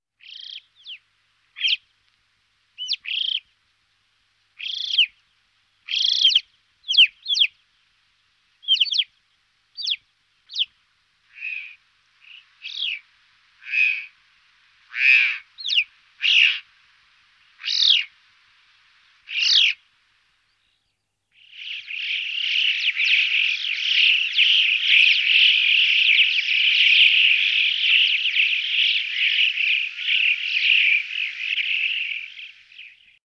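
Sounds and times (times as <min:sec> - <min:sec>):
alpine chough calling: 0:01.6 - 0:01.8, 0:02.8 - 0:03.5, 0:05.9 - 0:07.5, 0:08.6 - 0:09.1, 0:09.8 - 0:10.7, 0:11.3 - 0:14.2, 0:14.9 - 0:16.7, 0:17.6 - 0:18.2, 0:19.2 - 0:19.9, 0:21.4 - 0:33.1.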